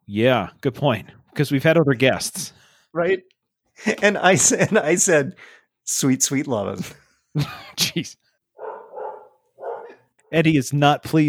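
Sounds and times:
speech: 0.1s - 8.2s, 10.3s - 11.2s
laughter: 3.8s - 5.4s, 6.8s - 8.2s
dog barking: 8.6s - 10.1s.

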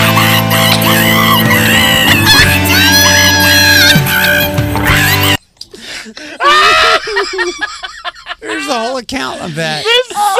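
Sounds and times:
loud harmonically rich scream: 0.0s - 5.4s
song: 0.0s - 5.4s
strained high-pitched cartoonish wail of a cartoon character: 0.0s - 5.4s, 6.4s - 7.2s
laughter: 6.2s - 10.3s
speech: 8.8s - 10.3s.

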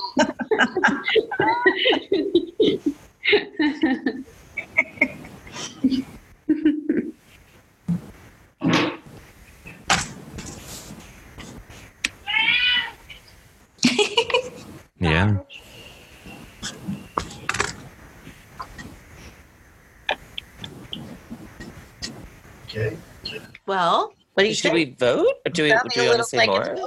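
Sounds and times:
people chatting and chuckling: 0.0s - 7.3s, 9.0s - 12.3s, 13.8s - 19.1s, 20.1s - 23.6s
speech: 0.2s - 0.4s, 1.0s - 2.4s, 24.4s - 26.8s
cat meowing: 12.2s - 13.0s.

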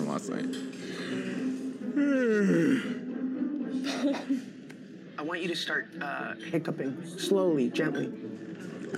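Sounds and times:
speech: 0.2s - 1.2s, 5.2s - 8.9s
person yawning: 2.0s - 3.0s
laughter: 3.7s - 4.6s.

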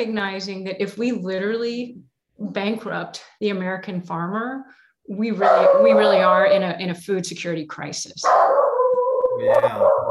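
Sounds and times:
speech: 0.0s - 8.6s, 9.4s - 10.0s
dog barking and yipping: 5.4s - 6.4s, 8.2s - 10.0s
dog howling: 8.3s - 10.0s.

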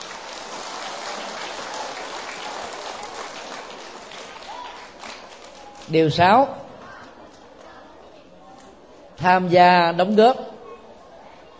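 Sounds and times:
large crowd of young listeners clapping: 0.0s - 6.4s
speech: 5.9s - 6.6s, 9.2s - 10.5s.

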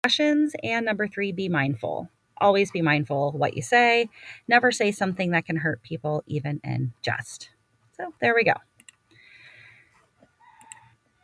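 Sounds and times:
speech: 0.1s - 8.7s
rooster crowing: 10.3s - 11.2s.

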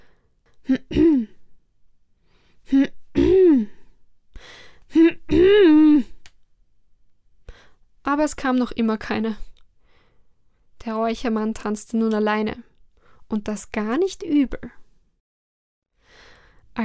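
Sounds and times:
speech: 0.7s - 1.3s, 8.1s - 9.5s, 11.0s - 12.7s, 13.3s - 14.8s
person clearing throat with a voiced ahem: 0.7s - 1.4s, 2.8s - 3.8s, 4.9s - 6.1s.

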